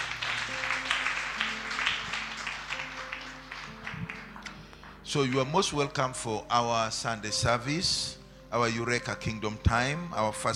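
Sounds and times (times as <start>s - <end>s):
audience clapping: 0.0s - 5.6s
speech: 5.1s - 10.5s.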